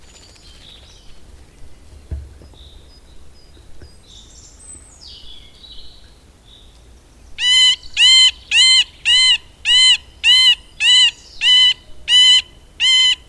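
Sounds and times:
middle spotted woodpecker nasal mewing quacks: 7.4s - 13.2s.

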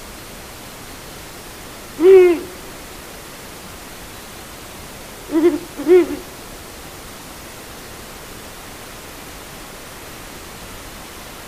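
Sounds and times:
steady background hiss: 0.0s - 11.4s
Ural owl deep hooting: 2.0s - 2.9s, 5.3s - 6.4s.

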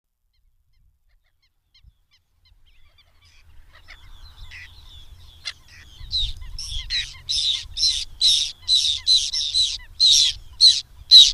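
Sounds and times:
whiskered tern giving harsh rasping calls: 2.7s - 11.3s.

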